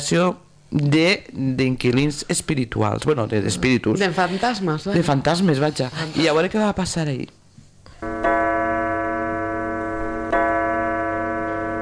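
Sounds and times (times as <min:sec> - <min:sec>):
speech: 0:00.0 - 0:07.4
clock striking with deep ringing strikes: 0:08.0 - 0:11.7.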